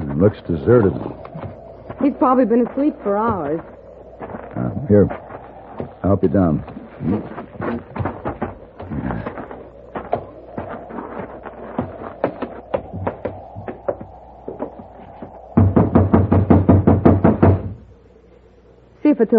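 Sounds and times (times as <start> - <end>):
speech: 0.2 - 1.2, 2.0 - 3.7, 4.6 - 5.2, 6.1 - 7.4, 19.2 - 19.3
knocking on a locked door: 15.6 - 17.8.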